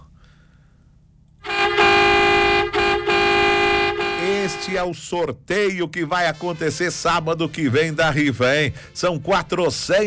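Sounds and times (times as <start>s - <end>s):
loud horn honking: 1.4s - 4.9s
speech: 4.8s - 10.0s.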